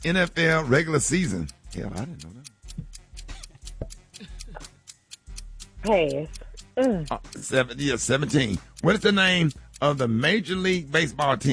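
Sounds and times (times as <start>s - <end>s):
speech: 0.0s - 2.9s, 5.8s - 11.5s
game clock timer ticking during a sports trivia round: 0.0s - 11.5s.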